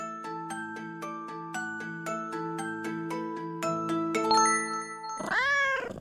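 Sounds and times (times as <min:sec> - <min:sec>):
ringing bell-like chimes: 0:00.0 - 0:05.3
cat meowing: 0:05.2 - 0:05.9.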